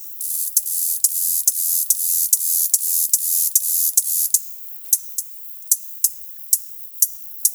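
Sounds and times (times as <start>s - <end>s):
chasm cricket chirping: 0.0s - 7.5s.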